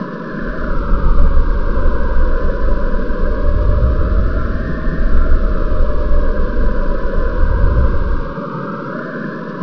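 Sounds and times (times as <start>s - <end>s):
wind wailing: 0.0s - 9.0s.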